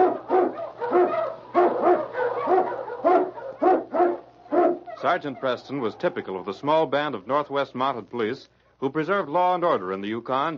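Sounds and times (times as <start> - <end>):
husky sled dog barking and yipping: 0.0 - 5.6
speech: 5.0 - 10.5.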